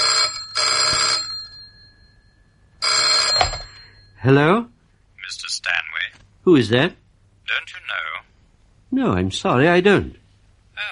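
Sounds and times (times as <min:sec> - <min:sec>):
telephone bell ringing: 0:00.0 - 0:04.2
speech: 0:04.2 - 0:04.7, 0:05.3 - 0:08.2, 0:08.9 - 0:10.2.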